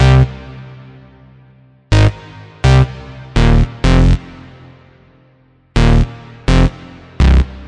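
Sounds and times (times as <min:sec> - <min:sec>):
sparse hard synth loop: 0:00.0 - 0:00.3, 0:01.9 - 0:04.3, 0:05.8 - 0:07.6.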